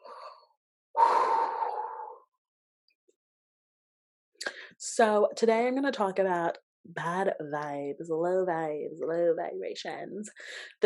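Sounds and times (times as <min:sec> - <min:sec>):
person taking an audible sigh-like breath: 0:00.0 - 0:02.3
speech: 0:04.8 - 0:10.8.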